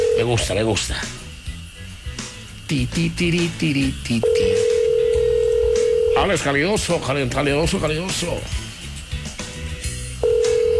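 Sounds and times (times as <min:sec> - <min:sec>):
telephone ringback tone of an outgoing call: 0:00.0 - 0:00.7, 0:04.2 - 0:06.5, 0:10.2 - 0:10.7
speech: 0:00.2 - 0:01.3, 0:02.7 - 0:04.6, 0:06.2 - 0:08.6.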